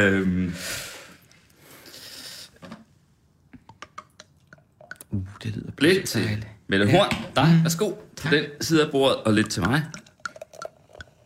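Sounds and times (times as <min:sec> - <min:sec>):
speech: 0:00.0 - 0:00.8, 0:05.5 - 0:10.0
drink being poured into glasses: 0:03.6 - 0:05.6, 0:09.0 - 0:11.2.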